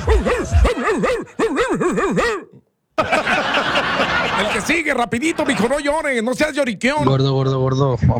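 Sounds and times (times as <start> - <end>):
laughter: 0.0 - 2.2, 3.0 - 6.2
person imitating a dog with yapping yelping barks: 0.0 - 2.7
speech: 4.7 - 8.1.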